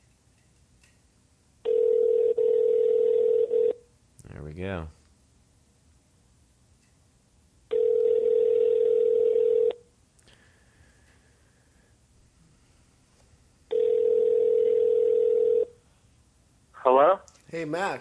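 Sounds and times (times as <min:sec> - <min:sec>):
outgoing phone call ringback tone: 0:01.6 - 0:03.8, 0:07.7 - 0:09.8, 0:13.7 - 0:15.8
speech: 0:04.6 - 0:05.0, 0:17.6 - 0:17.9.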